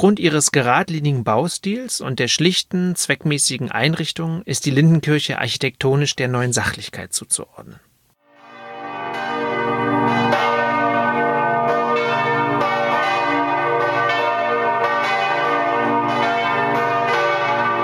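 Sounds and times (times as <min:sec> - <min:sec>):
speech: 0:00.0 - 0:07.9
several church bells pealing together: 0:08.4 - 0:17.8.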